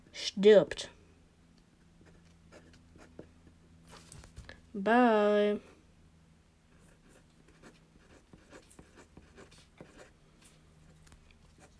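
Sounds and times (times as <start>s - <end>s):
faint steady low hum: 0.0s - 11.7s
speech: 0.2s - 1.0s, 4.8s - 5.7s
scratchy writing on paper as a letter is written: 7.0s - 10.1s.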